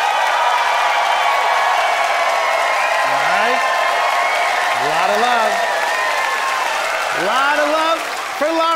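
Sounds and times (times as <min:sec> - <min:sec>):
audience applauding while voting by applause in a debate: 0:00.0 - 0:08.7
audience whoops and cheers: 0:00.0 - 0:08.7.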